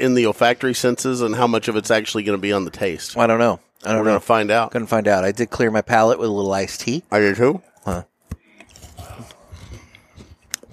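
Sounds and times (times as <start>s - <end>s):
speech: 0.0s - 8.1s
crunching and chewing of a strawberry Kit Kat: 8.3s - 10.7s.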